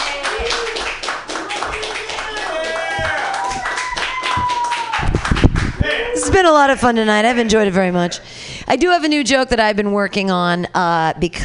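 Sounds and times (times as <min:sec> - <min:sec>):
excited voices and whoops: 0:00.0 - 0:00.9, 0:01.5 - 0:06.4
audience clapping: 0:00.0 - 0:05.9
speech: 0:06.4 - 0:11.4.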